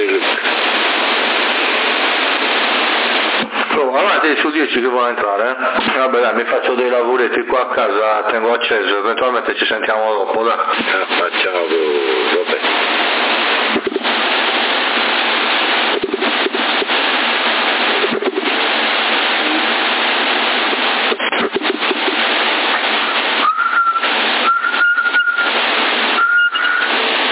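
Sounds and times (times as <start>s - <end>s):
narrow-band CB radio hiss: 0.0s - 27.2s
speech: 4.2s - 13.2s
whistle sent over a CB radio link: 23.4s - 27.0s.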